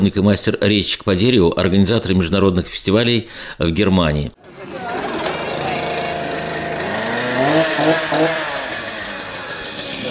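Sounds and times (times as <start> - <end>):
speech: 0.0 - 4.9
saw cutting through a block of wood: 4.9 - 10.0.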